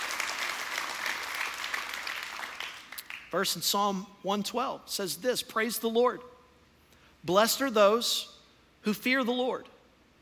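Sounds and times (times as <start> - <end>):
room full of people clapping: 0.0 - 3.4
speech: 3.3 - 6.3, 7.2 - 9.7.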